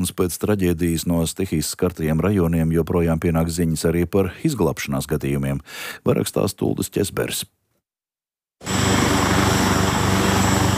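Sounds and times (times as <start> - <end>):
speech: 0.0 - 7.6
helicopter engine drone: 8.6 - 10.7.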